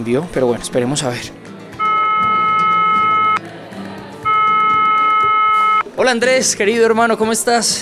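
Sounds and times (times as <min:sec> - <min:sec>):
speech: 0:00.0 - 0:01.5, 0:06.0 - 0:07.8
low murmur of noise: 0:00.0 - 0:07.8
steady electronic telephone ringing tone: 0:01.8 - 0:03.4, 0:04.2 - 0:05.9.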